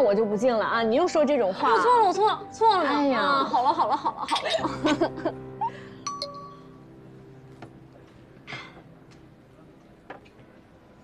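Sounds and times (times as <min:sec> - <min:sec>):
speech: 0:00.0 - 0:05.9
laughter: 0:03.4 - 0:05.4
glasses clinking in a toast: 0:06.1 - 0:06.7.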